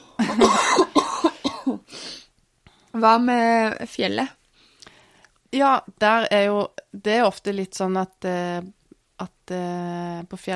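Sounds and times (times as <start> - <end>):
person coughing: 0.1 - 1.9
speech: 3.0 - 4.4, 5.5 - 10.5.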